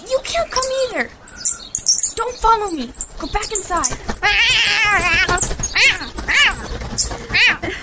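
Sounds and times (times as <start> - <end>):
speech: 2.2 - 6.4, 7.0 - 7.8
cat caterwauling: 4.1 - 6.6, 7.3 - 7.6.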